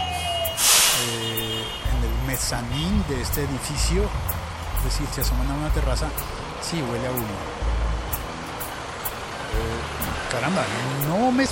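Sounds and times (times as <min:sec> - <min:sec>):
large fire truck deep engine roar: 0:00.0 - 0:11.5
steady street noise: 0:00.0 - 0:11.5
short hissing bursts: 0:00.6 - 0:01.2
speech: 0:02.4 - 0:07.7, 0:09.5 - 0:11.5.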